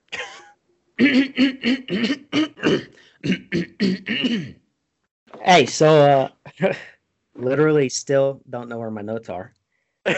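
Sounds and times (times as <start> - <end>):
person clearing throat: 0.2 - 4.6, 6.5 - 6.9
speech: 1.0 - 4.6, 5.4 - 10.1.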